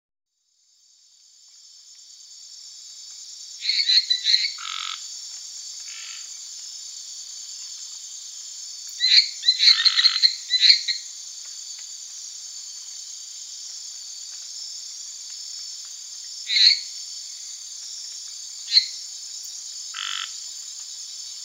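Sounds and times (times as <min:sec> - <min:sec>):
Hyla minuta frog: 0:03.6 - 0:05.1, 0:05.8 - 0:06.4, 0:08.9 - 0:11.2, 0:16.4 - 0:17.6, 0:18.6 - 0:19.0, 0:19.9 - 0:20.5.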